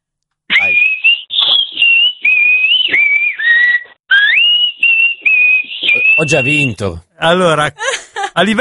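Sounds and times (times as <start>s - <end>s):
rhythmic human whistling in short bursts: 0.5s - 6.8s
speech: 6.2s - 8.5s.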